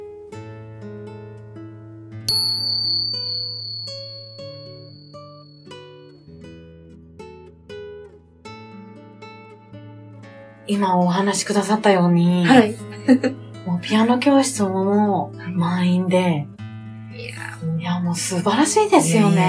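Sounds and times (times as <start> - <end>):
soft resonant bell chimes ringing: 2.3 - 6.0
speech: 10.7 - 16.5, 18.1 - 19.4.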